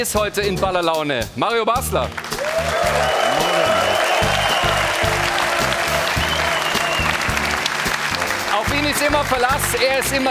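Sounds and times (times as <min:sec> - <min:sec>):
speech: 0:00.0 - 0:03.1, 0:08.6 - 0:10.2
loud sustained studio audience applause: 0:02.1 - 0:10.2
whoops: 0:02.4 - 0:07.3.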